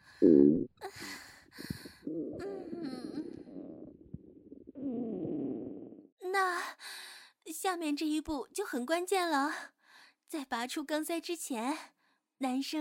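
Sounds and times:
wet intestinal gurgling: 0:00.0 - 0:06.1
speech: 0:00.2 - 0:01.0, 0:07.7 - 0:12.7.

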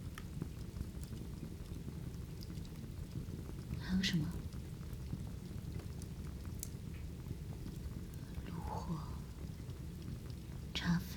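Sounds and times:
rain pattering: 0:00.0 - 0:11.1
speech: 0:03.9 - 0:04.4, 0:10.8 - 0:11.1.

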